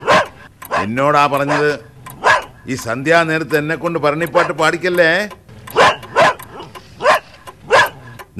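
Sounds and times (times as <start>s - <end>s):
dog barking: 0.0s - 2.6s, 4.4s - 4.6s, 5.7s - 8.2s
speech: 0.8s - 1.9s, 2.6s - 5.9s.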